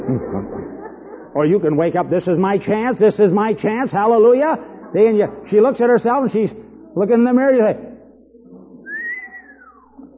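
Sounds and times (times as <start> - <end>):
laughter: 0.0 - 1.6
speech: 0.1 - 7.9
person wolf whistling: 8.8 - 10.0.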